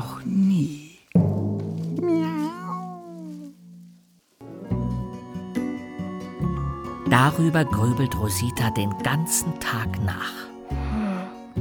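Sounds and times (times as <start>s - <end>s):
music: 1.2s - 11.5s
cat meowing: 2.0s - 3.7s
speech: 7.1s - 10.5s.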